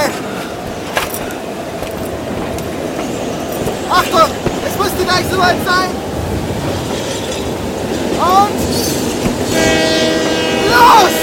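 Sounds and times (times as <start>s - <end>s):
train rolling along the tracks: 0.0s - 11.2s
light metallic clicks and rattles: 0.4s - 4.7s
speech: 5.2s - 6.0s, 8.2s - 8.8s.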